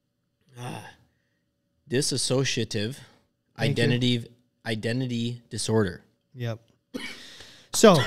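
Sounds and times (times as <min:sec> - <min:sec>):
speech: 0:01.9 - 0:08.0
rough throaty cough after swallowing wrong: 0:07.0 - 0:08.0.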